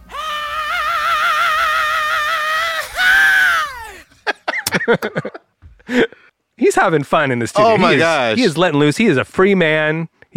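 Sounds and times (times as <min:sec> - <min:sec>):
singer holding a wavering note and screaming in a recorded song: 0:00.0 - 0:04.0
laughter: 0:03.9 - 0:06.2
speech: 0:04.9 - 0:05.3, 0:06.8 - 0:10.3.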